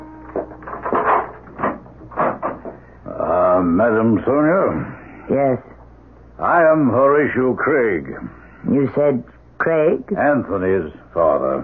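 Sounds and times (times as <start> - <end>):
door chime: 0.0 - 1.4
speech: 0.4 - 0.6, 3.6 - 5.7, 6.4 - 11.6.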